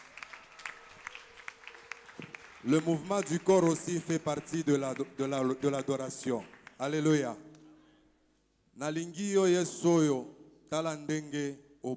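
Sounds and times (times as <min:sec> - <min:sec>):
congregation applauding during a church worship service: 0:00.0 - 0:07.3
speech: 0:02.6 - 0:07.5, 0:08.8 - 0:11.9.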